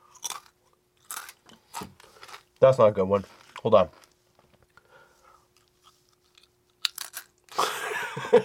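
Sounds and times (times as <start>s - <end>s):
thick crispy kettle-style ketchup potato chips being bitten and chewed: 0.0s - 2.6s, 5.6s - 7.6s
speech: 2.6s - 4.0s
laughter: 7.6s - 8.4s.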